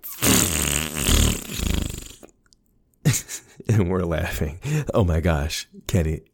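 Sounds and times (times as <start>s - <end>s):
synthetic fart noise played by a smart speaker: 0.0s - 2.3s
speech: 3.1s - 6.3s.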